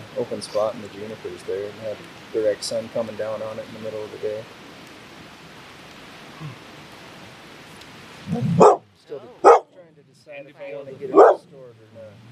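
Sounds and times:
hiss: 0.0s - 12.3s
speech: 0.2s - 4.6s, 6.4s - 6.6s, 8.3s - 9.4s, 10.2s - 12.3s
dog whining: 8.3s - 8.8s, 9.4s - 9.6s, 11.1s - 11.4s
dog barking: 8.5s - 8.8s, 9.4s - 9.7s, 11.1s - 11.4s.

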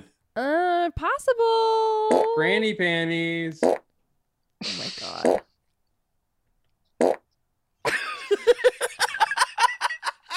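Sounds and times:
speech: 0.4s - 3.8s, 4.6s - 5.5s
long loud sputtering fart: 4.6s - 5.5s, 7.0s - 7.2s
laughter: 7.9s - 10.3s.

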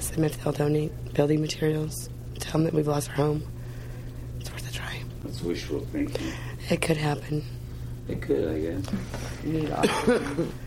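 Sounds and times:
steady low hum: 0.0s - 10.6s
speech: 0.2s - 3.6s, 4.8s - 10.6s
woman with a two-month cough coughing: 9.7s - 10.5s.

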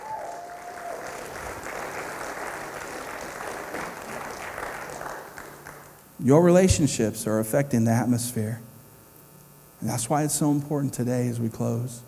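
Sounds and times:
sustained applause from a large audience: 0.0s - 5.9s
speech: 6.2s - 8.7s, 9.8s - 12.0s.

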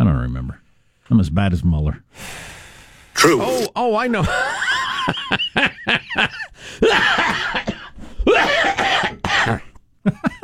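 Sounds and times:
speech: 0.3s - 2.5s, 3.2s - 7.5s
person laughing: 4.2s - 8.5s, 9.1s - 10.4s
person coughing: 6.9s - 9.7s.

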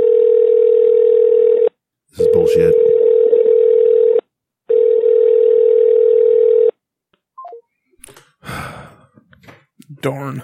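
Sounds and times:
long steady buzzing telephone ringback tones in the earpiece: 0.0s - 6.7s
speech: 10.0s - 10.4s.

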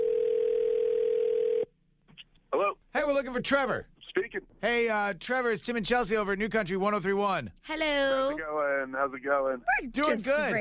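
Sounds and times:
telephone dial tone while placing a call: 0.0s - 1.7s
speech: 3.0s - 10.5s.

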